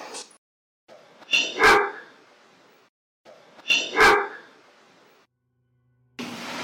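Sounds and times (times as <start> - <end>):
dog barking: 1.5 - 2.1, 3.8 - 4.5.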